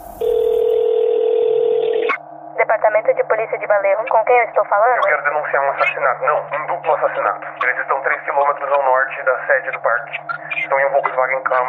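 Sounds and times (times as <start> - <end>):
landline telephone tone: 0.0 - 2.2
speech: 2.9 - 11.6.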